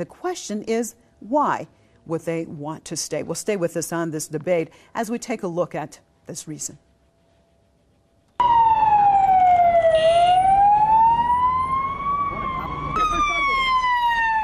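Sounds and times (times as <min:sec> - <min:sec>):
speech: 0:00.0 - 0:06.9
ambulance siren wailing with sweeping pitch: 0:08.4 - 0:14.4
steady traffic and engine rumble: 0:08.4 - 0:14.4.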